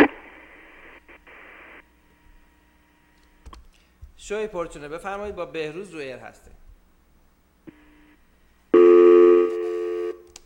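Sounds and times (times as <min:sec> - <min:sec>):
speech: 0:04.2 - 0:06.6
steady telephone dial tone: 0:08.8 - 0:10.2.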